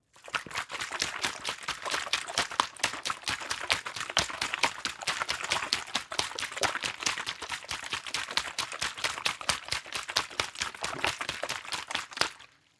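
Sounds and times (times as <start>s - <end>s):
water bottle shaking: 0.1s - 12.4s.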